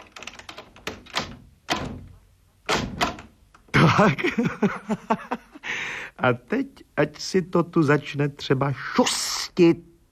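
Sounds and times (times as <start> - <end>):
door latch clicks rattling: 0.0 - 3.6
wooden door pushed shut: 0.9 - 3.4
laughter: 3.8 - 5.7
speech: 3.9 - 9.9.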